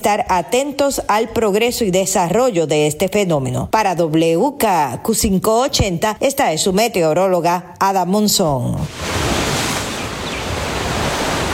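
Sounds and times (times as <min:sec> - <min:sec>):
speech: 0:00.0 - 0:09.4
ocean waves washing onto the shore: 0:08.8 - 0:11.5.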